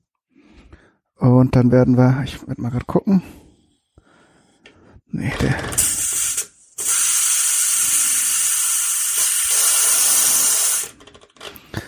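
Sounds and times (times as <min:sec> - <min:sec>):
speech: 0:01.2 - 0:03.4, 0:05.1 - 0:06.0
pressure cooker venting steam: 0:05.8 - 0:10.9.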